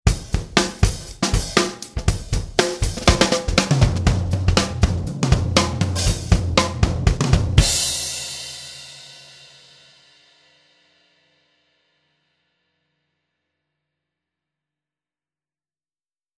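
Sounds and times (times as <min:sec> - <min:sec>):
drum kit: 0:00.0 - 0:10.0.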